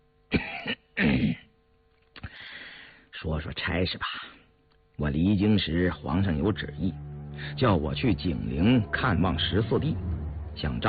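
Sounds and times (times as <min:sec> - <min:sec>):
man giving a dry throaty cough: 0:00.3 - 0:01.5
speech: 0:03.3 - 0:04.4, 0:05.0 - 0:10.8.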